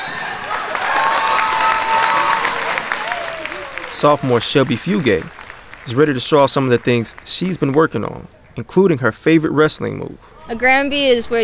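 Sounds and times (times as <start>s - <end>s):
people shouting in the crowd: 0.0s - 8.7s
whistles from the crowd: 0.0s - 8.7s
large crowd applauding in a packed gym: 0.0s - 10.1s
laughter: 0.0s - 11.4s
speech: 4.0s - 11.4s.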